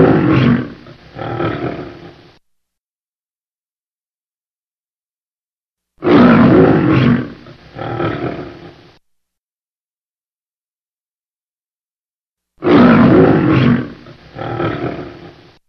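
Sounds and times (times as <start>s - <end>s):
lion roaring: 0.0s - 2.3s, 6.0s - 8.9s, 12.6s - 15.6s.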